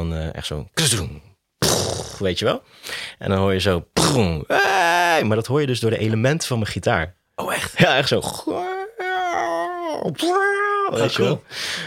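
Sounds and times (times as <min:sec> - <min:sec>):
speech: 0:00.1 - 0:08.7, 0:10.0 - 0:11.8
human voice letting out a primal wailing cry: 0:04.5 - 0:05.3, 0:08.5 - 0:11.0.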